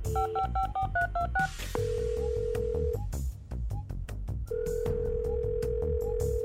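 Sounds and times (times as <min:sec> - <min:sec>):
touch-tone beeps of a phone number being dialed: 0:00.1 - 0:03.0
phone ringback tones: 0:00.1 - 0:03.1, 0:04.5 - 0:06.4.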